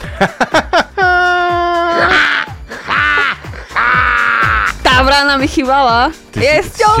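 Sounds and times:
laughter: 0:00.0 - 0:04.7
speech: 0:00.2 - 0:00.6, 0:05.5 - 0:06.9
person imitating crow caws: 0:01.6 - 0:04.8.

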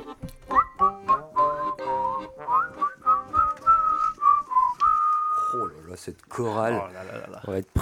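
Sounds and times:
whistle blown in a wavering tune-like run of notes: 0:00.5 - 0:05.8
people talking: 0:05.4 - 0:07.7.

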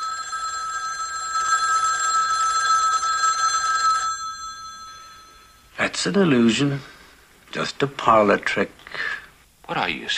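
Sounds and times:
telephone bell ringing: 0:00.0 - 0:05.8
faint room hum: 0:00.0 - 0:10.1
speech: 0:05.9 - 0:06.9, 0:07.5 - 0:10.1.

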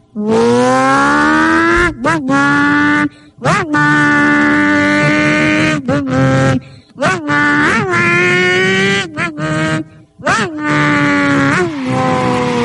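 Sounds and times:
voice imitating a revving motorcycle engine: 0:00.1 - 0:12.6.

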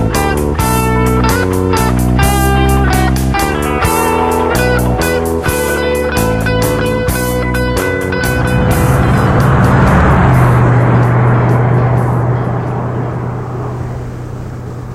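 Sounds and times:
steady low engine hum: 0:00.0 - 0:14.9
car driving past: 0:06.8 - 0:14.9.

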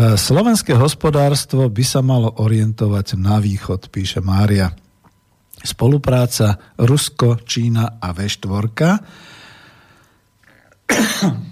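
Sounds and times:
speech: 0:00.1 - 0:04.8, 0:05.6 - 0:09.4, 0:10.9 - 0:11.5
faint breathing: 0:09.0 - 0:10.8
harsh coughs: 0:10.9 - 0:11.5.

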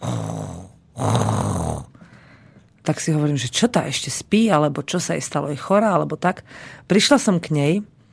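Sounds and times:
sow pig breathing heavily and snoring: 0:00.0 - 0:01.9
speech: 0:02.9 - 0:07.9.

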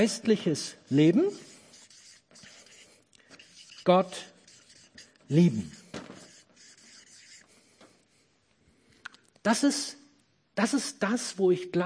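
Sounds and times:
speech: 0:00.0 - 0:01.5, 0:03.9 - 0:04.3, 0:05.3 - 0:05.8, 0:09.4 - 0:10.0, 0:10.6 - 0:11.8
scratchy dry writing strokes on a board: 0:00.9 - 0:08.0.

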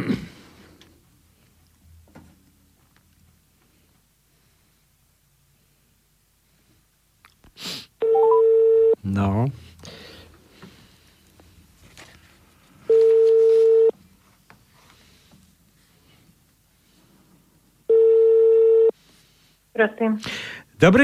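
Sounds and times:
electronic telephone ringback tone over a line: 0:08.0 - 0:09.0, 0:12.9 - 0:13.9, 0:17.9 - 0:18.9
speech: 0:19.8 - 0:21.0.

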